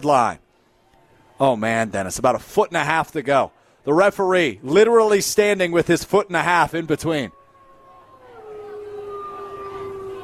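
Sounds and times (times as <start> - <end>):
speech: 0.0 - 0.4, 1.4 - 7.4
noisy crowded background at a football game: 0.0 - 10.2
people howling like wolves at a football game in Sun Prairie: 7.3 - 10.2.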